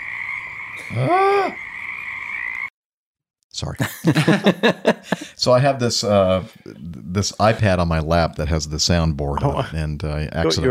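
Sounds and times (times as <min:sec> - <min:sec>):
frog croaking: 0:00.0 - 0:02.7
speech: 0:00.9 - 0:01.6, 0:03.6 - 0:10.7
laughter: 0:03.8 - 0:05.4.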